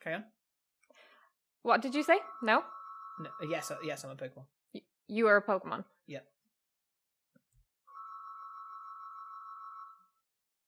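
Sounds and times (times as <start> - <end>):
speech: 0.0 - 0.4, 1.6 - 6.3
mobile phone ringing with a steady electronic tone: 2.0 - 4.1, 7.9 - 10.2.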